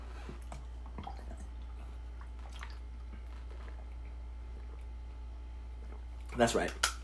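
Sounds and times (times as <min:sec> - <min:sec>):
person taking a swig of water: 0:00.0 - 0:05.1
steady low hum: 0:00.0 - 0:07.0
speech: 0:06.4 - 0:06.9.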